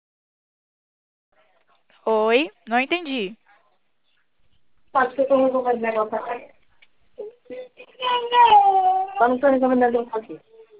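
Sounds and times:
speech: 0:02.0 - 0:03.4, 0:05.0 - 0:06.5, 0:07.5 - 0:10.5
young girl crying: 0:07.2 - 0:09.4.

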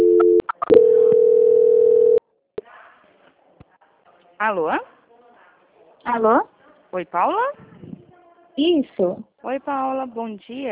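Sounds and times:
telephone line tone while a call is transferred: 0:00.0 - 0:02.2
speech: 0:04.4 - 0:05.0, 0:06.0 - 0:07.8, 0:08.6 - 0:10.7.

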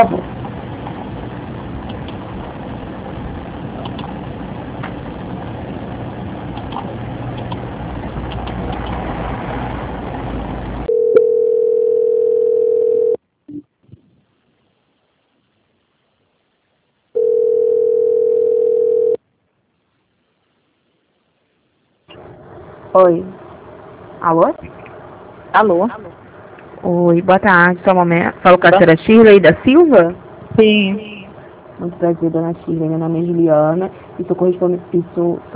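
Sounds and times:
soft telephone line clicks: 0:06.6 - 0:07.6, 0:08.3 - 0:09.0
telephone line hiss during a call transfer: 0:10.8 - 0:13.2, 0:17.2 - 0:19.2
speech: 0:23.0 - 0:23.4, 0:24.2 - 0:24.8, 0:25.5 - 0:26.2, 0:26.8 - 0:31.1, 0:31.8 - 0:35.5.

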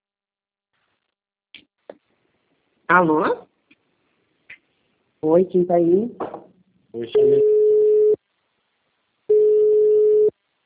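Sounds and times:
speech: 0:02.9 - 0:03.5, 0:05.2 - 0:06.4, 0:07.0 - 0:07.6
telephone busy tone after a dropped call: 0:07.2 - 0:08.2, 0:09.3 - 0:10.3.

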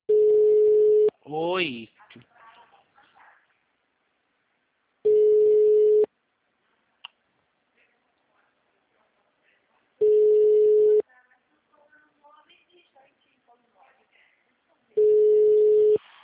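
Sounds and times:
telephone ringing tone on a call: 0:00.1 - 0:01.1, 0:05.0 - 0:06.1, 0:10.0 - 0:11.0, 0:15.0 - 0:16.0
speech: 0:01.3 - 0:02.3.

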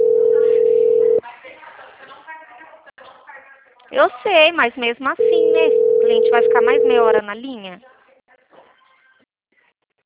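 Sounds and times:
telephone line tone after a dropped call: 0:00.0 - 0:01.2, 0:05.2 - 0:07.2
speech: 0:04.0 - 0:07.9.

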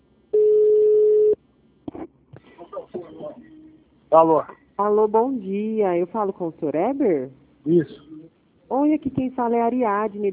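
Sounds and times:
ringback tone of an outgoing telephone call: 0:00.4 - 0:01.4
speech: 0:04.1 - 0:08.1, 0:08.8 - 0:10.3.

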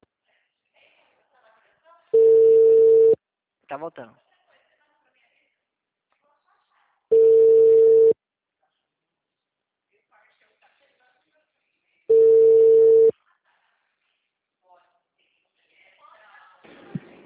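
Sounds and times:
telephone line tone beeps after a dropped call: 0:02.2 - 0:03.2, 0:07.1 - 0:08.2, 0:12.1 - 0:13.1
speech: 0:03.7 - 0:04.3.

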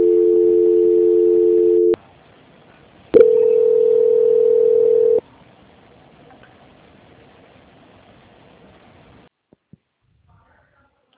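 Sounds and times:
telephone line tone during call transfer: 0:00.0 - 0:02.0, 0:03.2 - 0:05.2.

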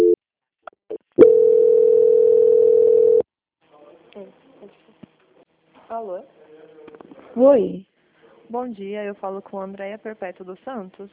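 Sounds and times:
telephone line tone while a bank call is transferred: 0:01.2 - 0:03.2
speech: 0:06.0 - 0:06.4, 0:07.4 - 0:07.9, 0:08.5 - 0:11.1.

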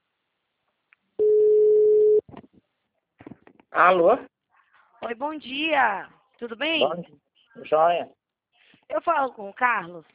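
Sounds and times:
low-pitched telephone ringback tone while a call connects: 0:01.2 - 0:02.2
speech: 0:03.8 - 0:04.3, 0:05.1 - 0:08.2, 0:08.9 - 0:10.1.

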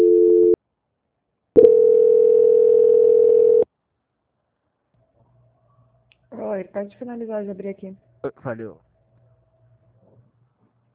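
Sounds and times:
telephone line tone during call transfer: 0:00.0 - 0:00.6, 0:01.6 - 0:03.7
speech: 0:06.7 - 0:08.9.

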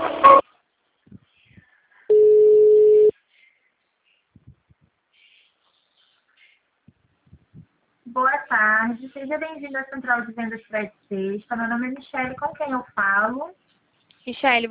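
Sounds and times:
steady mid-pitched telephone beep as a call is transferred: 0:02.1 - 0:03.1
speech: 0:08.8 - 0:13.6, 0:14.3 - 0:14.6.

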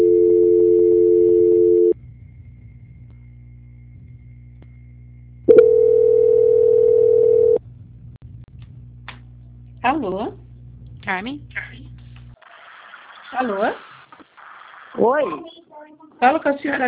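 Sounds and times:
telephone tones while a call is being transferred: 0:00.0 - 0:02.0, 0:05.5 - 0:07.6
low hum: 0:00.0 - 0:12.4
speech: 0:11.2 - 0:11.9, 0:13.3 - 0:13.8, 0:15.0 - 0:15.6, 0:16.2 - 0:16.8.

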